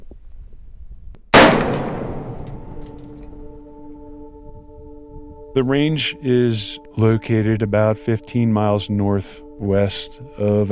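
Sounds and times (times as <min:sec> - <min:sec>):
AR-15 rifle gunshot at a desert shooting range: 0:01.4 - 0:03.1
speech: 0:05.6 - 0:10.7.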